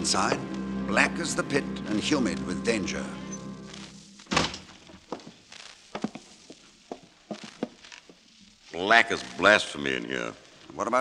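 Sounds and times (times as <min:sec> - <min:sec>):
speech: 0:00.0 - 0:03.3, 0:08.8 - 0:11.0
heavy walnut door at a lodge being unbarred and opened: 0:04.3 - 0:05.0.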